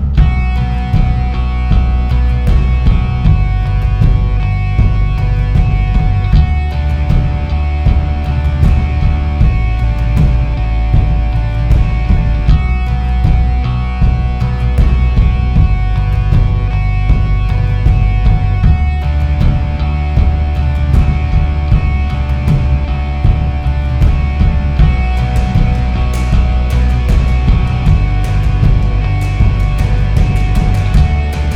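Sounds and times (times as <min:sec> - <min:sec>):
background music: 0:00.2 - 0:31.5.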